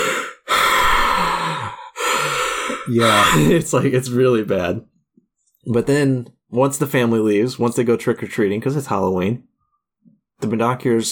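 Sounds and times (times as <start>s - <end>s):
person imitating heavy creepy breathing: 0.0s - 3.8s
speech: 2.9s - 4.9s, 5.6s - 9.5s, 10.4s - 11.1s.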